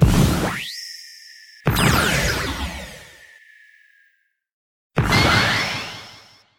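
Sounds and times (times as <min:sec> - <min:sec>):
full flight sequence sound effects: 0:00.0 - 0:04.0.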